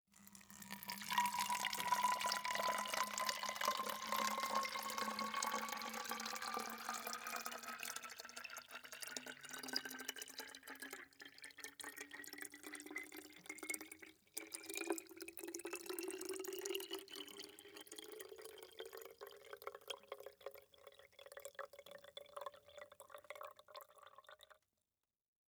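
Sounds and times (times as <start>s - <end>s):
liquid water pouring into a plastic bottle: 0.2s - 24.7s.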